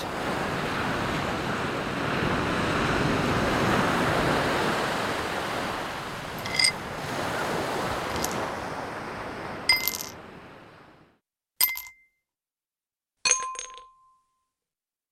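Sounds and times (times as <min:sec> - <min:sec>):
gentle sea waves washing onto the shore: 0:00.0 - 0:11.2.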